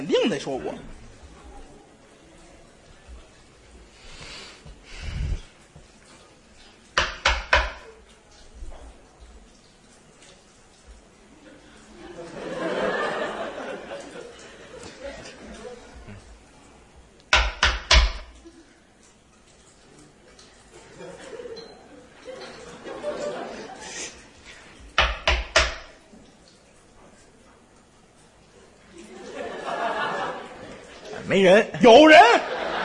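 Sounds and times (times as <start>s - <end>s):
speech: 0.2s - 1.0s, 31.3s - 32.4s
knocking on a wooden tabletop like a door: 7.0s - 7.8s, 17.3s - 18.3s, 25.0s - 25.9s
audience laughter: 11.9s - 16.0s, 20.8s - 24.1s, 29.0s - 31.3s, 32.4s - 32.8s.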